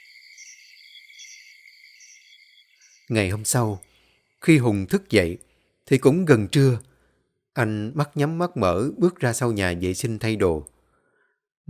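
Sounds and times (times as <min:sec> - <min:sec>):
crickets and other insects chirping in a garden at night: 0:00.0 - 0:05.4
speech: 0:03.1 - 0:06.9, 0:07.6 - 0:10.7.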